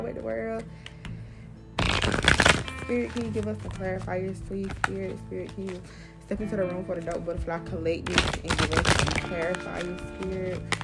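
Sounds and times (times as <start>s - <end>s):
speech: 0.0s - 0.9s, 2.9s - 10.8s
deck of tarot cards being riffled: 1.8s - 5.9s, 8.0s - 10.8s.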